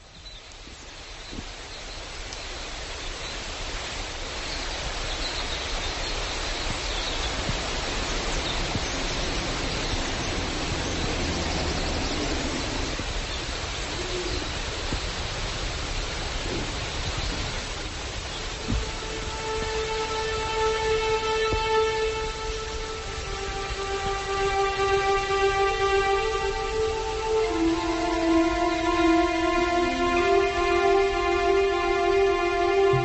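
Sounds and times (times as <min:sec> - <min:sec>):
river water rushing steadily: 0:02.7 - 0:33.0
birds chirping: 0:04.5 - 0:15.1, 0:16.3 - 0:33.0.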